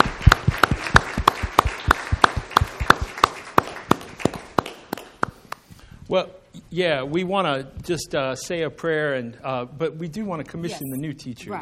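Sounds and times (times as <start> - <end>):
audience applauding: 0.0 - 5.5
hand claps: 0.0 - 5.7
speech: 6.1 - 11.6.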